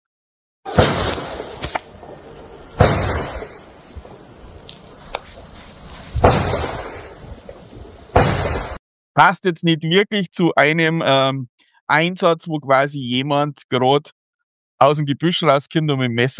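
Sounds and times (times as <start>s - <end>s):
simulated gunshots in a narrow allotment garden area: 0.7s - 8.8s
speech: 9.2s - 14.2s, 14.8s - 16.3s.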